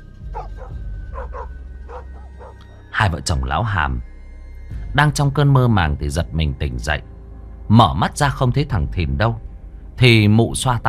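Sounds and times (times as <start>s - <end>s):
black dog and village dogs barking shrilly in a village yard: 0.3s - 2.8s
speech: 3.0s - 4.1s, 4.9s - 7.1s, 7.7s - 9.4s, 10.0s - 10.8s.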